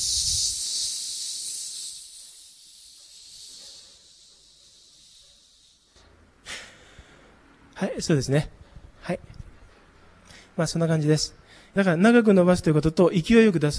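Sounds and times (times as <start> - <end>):
sharp hissing exhalations during an abdominal breathing exercise: 0.0 - 7.4
speech: 7.8 - 9.3, 10.6 - 13.7.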